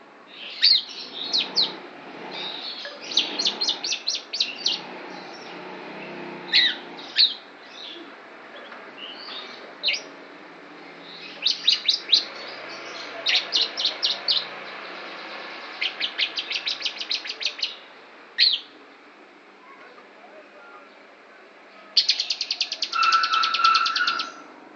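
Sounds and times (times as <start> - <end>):
lovebird imitating the song of the Javan prinia: 0.4 - 5.6, 6.5 - 10.1, 11.0 - 17.8, 22.0 - 24.4.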